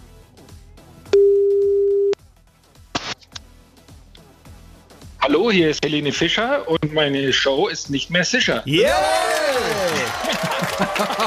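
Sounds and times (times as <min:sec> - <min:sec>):
outgoing phone call ringback tone: 0:01.1 - 0:02.2
speech: 0:05.3 - 0:11.2
laughter: 0:08.9 - 0:11.2.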